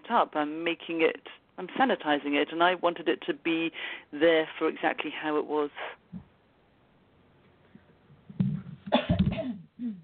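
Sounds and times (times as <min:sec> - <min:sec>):
speech: 0:00.1 - 0:06.3
person coughing: 0:08.9 - 0:10.0.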